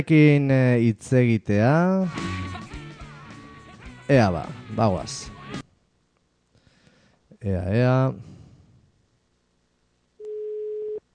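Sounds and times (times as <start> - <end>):
speech: 0.0 - 2.4, 4.1 - 5.6, 7.4 - 8.4
faint hiss: 0.0 - 11.1
telephone ringback tone while a call is placed: 10.2 - 11.0.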